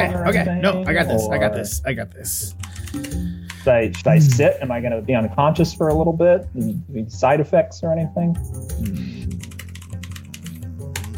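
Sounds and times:
speech: 0.0s - 9.0s
rapid typing on a computer keyboard: 9.2s - 11.1s.

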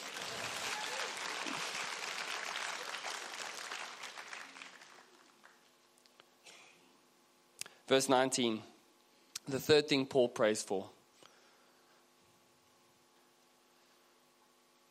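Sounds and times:
congregation applauding: 0.0s - 5.7s
speech: 7.9s - 8.7s, 9.5s - 11.0s.

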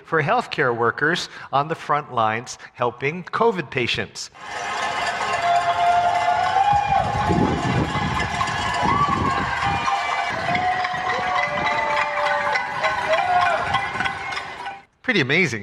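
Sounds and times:
speech: 0.1s - 4.9s, 15.1s - 15.6s
crowd cheering outdoors: 4.4s - 14.9s.

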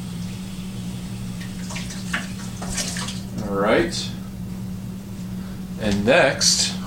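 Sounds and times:
lukewarm tap water running over frozen swizzle sticks: 0.1s - 3.3s
water splashing: 1.4s - 3.3s
speech: 3.5s - 4.1s, 5.8s - 6.7s.

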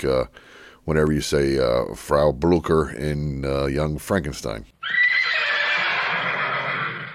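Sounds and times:
speech: 0.0s - 5.0s
horse whinnying: 4.8s - 7.1s.

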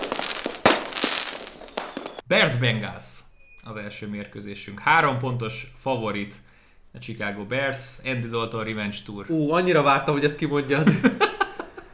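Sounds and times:
fireworks crackling and popping: 0.0s - 2.2s
speech: 2.3s - 11.2s
laughter: 10.8s - 11.9s.

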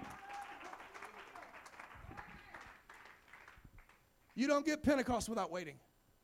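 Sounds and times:
audience clapping hands in sustained dense applause: 0.0s - 4.0s
speech: 4.4s - 5.9s.

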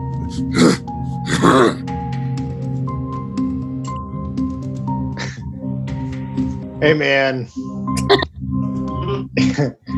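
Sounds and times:
low musical drone: 0.0s - 9.9s
voice imitating grunts from a tree: 0.3s - 1.8s, 5.2s - 5.4s
speech: 0.3s - 1.9s, 6.8s - 8.2s, 9.6s - 9.9s.

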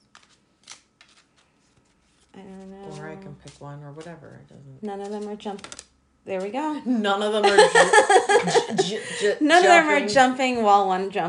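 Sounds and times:
deck of basket-weave-patterned cards being shuffled: 0.0s - 5.9s
speech: 2.4s - 11.2s
laughter: 7.4s - 9.7s.

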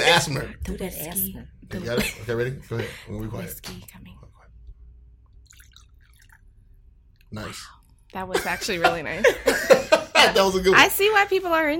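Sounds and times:
speech: 0.2s - 4.1s, 7.3s - 11.7s
laughter: 1.7s - 3.2s, 8.3s - 10.7s
drink poured into a cup: 5.3s - 6.5s.

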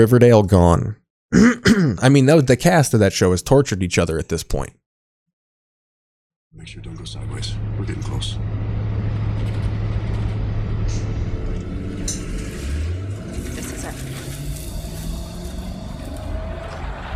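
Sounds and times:
speech: 0.0s - 4.8s, 6.5s - 8.8s
1990s truck engine drone heard from inside: 6.6s - 17.1s
road rumble inside a moving 1990s truck: 6.6s - 17.1s.

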